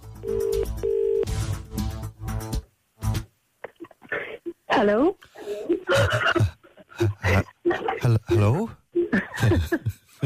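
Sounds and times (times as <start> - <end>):
telephone ringback tone on an outgoing call: 0.2 - 1.3
speech: 4.8 - 5.2, 5.9 - 6.5
laughter: 5.8 - 10.2.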